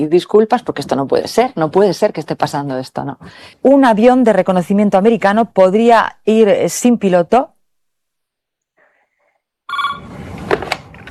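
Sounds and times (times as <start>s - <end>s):
speech: 0.0s - 7.5s
telephone ringing: 9.7s - 10.3s.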